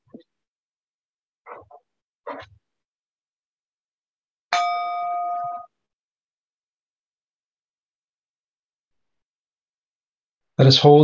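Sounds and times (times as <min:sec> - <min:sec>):
chime ringing: 0:04.5 - 0:05.7
speech: 0:10.6 - 0:11.0.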